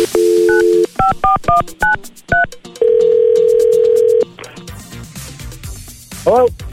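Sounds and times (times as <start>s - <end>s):
telephone dial tone: 0.0s - 1.2s, 2.8s - 4.2s
touch-tone beeps of a number being dialed: 0.0s - 4.2s.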